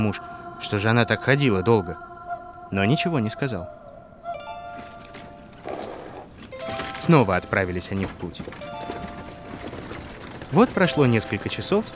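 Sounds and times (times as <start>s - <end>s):
speech: 0.0s - 2.1s, 2.7s - 3.8s, 7.1s - 8.7s, 10.5s - 11.9s
horse hooves clip-clopping pulling a cart: 4.7s - 11.9s.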